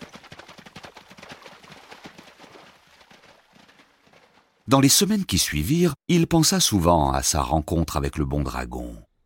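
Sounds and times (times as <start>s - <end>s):
horse hooves clip-clopping: 0.0s - 4.6s
speech: 4.7s - 9.1s.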